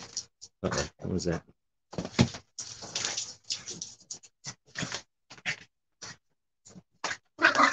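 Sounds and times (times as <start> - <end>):
speech: 0.6 - 1.6
dog grunting and snorting while playing: 7.0 - 7.7.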